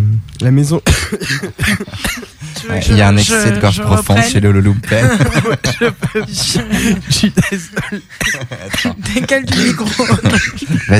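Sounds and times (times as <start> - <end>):
speech: 0.4 - 10.9
person coughing: 0.8 - 2.4, 5.7 - 10.9
laughter: 4.5 - 10.9.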